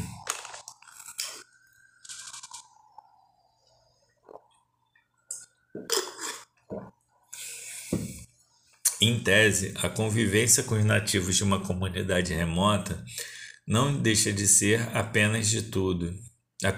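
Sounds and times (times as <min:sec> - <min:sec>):
crinkly water bottle handling: 0:00.0 - 0:02.8
soft gulps and clicks: 0:00.1 - 0:06.0
speech: 0:09.0 - 0:16.7.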